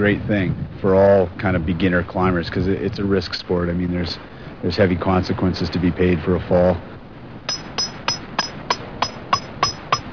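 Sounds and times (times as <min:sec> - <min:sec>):
speech: 0:00.0 - 0:07.0
climber hammering a metal piton into rock: 0:07.5 - 0:10.1.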